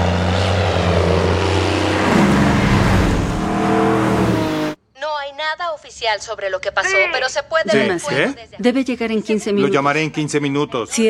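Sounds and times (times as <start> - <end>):
airplane flying overhead with propeller-engine drone: 0.0 - 4.8
speech: 6.0 - 11.0.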